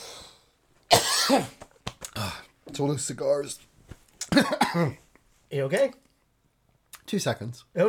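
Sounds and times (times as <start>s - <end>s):
person coughing with a harsh rasping cough: 0.9s - 1.6s, 4.2s - 5.0s
speech: 1.3s - 1.6s, 2.2s - 3.7s, 4.3s - 6.0s, 7.1s - 7.8s.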